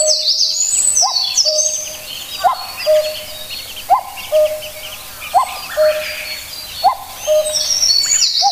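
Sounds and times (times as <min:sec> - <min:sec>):
common cuckoo calling a descending cu-coo: 0:00.0 - 0:08.5
small birds chirping high above: 0:00.0 - 0:08.5.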